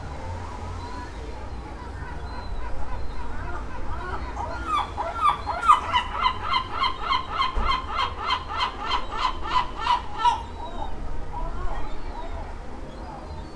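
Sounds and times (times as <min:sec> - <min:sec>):
seagull calling: 0:00.8 - 0:11.5.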